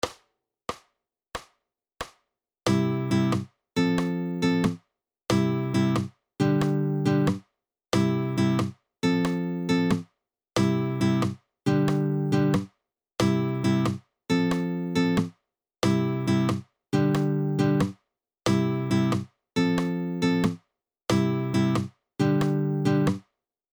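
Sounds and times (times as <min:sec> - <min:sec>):
guitar strumming pattern: 0:02.7 - 0:07.4, 0:08.0 - 0:10.0, 0:10.6 - 0:12.6, 0:13.2 - 0:17.9, 0:18.5 - 0:23.2.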